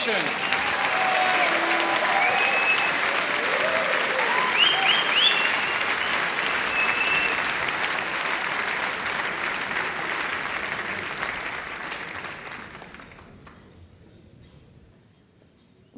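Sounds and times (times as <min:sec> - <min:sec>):
speech: 0:00.0 - 0:00.8
audience cheers: 0:00.0 - 0:08.8
large audience applause welcoming the Salvator speaker at the Nockherberg Lenten sermon: 0:00.0 - 0:13.6
audience whistles: 0:00.4 - 0:00.9, 0:02.0 - 0:03.2, 0:04.2 - 0:07.6.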